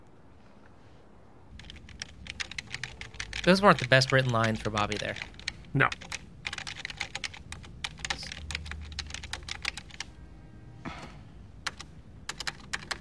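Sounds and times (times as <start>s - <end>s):
typing on a chunky computer keyboard: 1.5s - 10.1s, 11.6s - 12.9s
speech: 3.4s - 6.1s.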